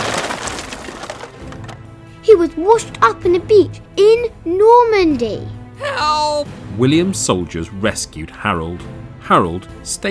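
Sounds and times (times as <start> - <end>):
crashing noise: 0.0 - 1.8
boat timber splintering and cracking in a shipwreck in a storm in the English Channel: 0.0 - 1.9
speech: 2.4 - 10.0.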